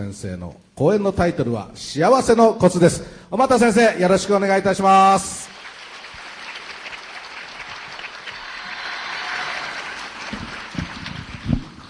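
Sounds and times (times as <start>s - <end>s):
speech: 0.0s - 5.6s
large audience applause welcoming the speaker: 5.4s - 11.8s.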